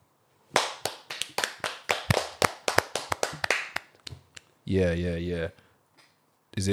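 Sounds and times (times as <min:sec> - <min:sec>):
hand clapping: 0:00.6 - 0:04.2
speech: 0:04.7 - 0:05.6, 0:06.6 - 0:06.7.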